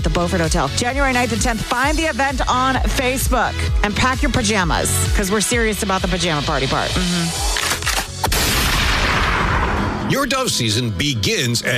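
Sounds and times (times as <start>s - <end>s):
speech: 0.0s - 7.7s, 10.1s - 11.7s
shotgun firing: 7.5s - 10.1s.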